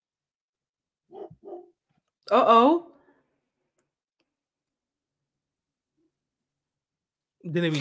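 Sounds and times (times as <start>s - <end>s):
dog barking: 1.1s - 1.8s
speech: 2.3s - 2.9s, 7.5s - 7.8s.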